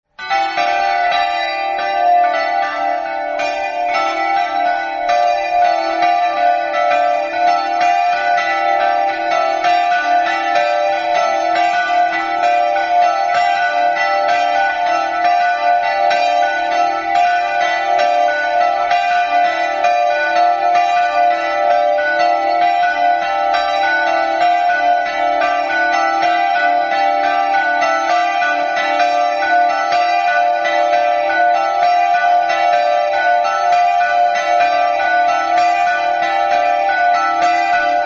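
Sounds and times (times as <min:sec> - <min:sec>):
bells: 0:00.1 - 0:38.0.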